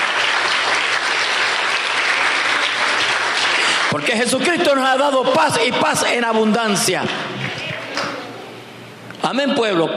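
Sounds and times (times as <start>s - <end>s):
large crowd applauding: 0.0s - 4.3s, 6.8s - 8.0s
speech: 3.9s - 7.4s, 9.3s - 9.9s.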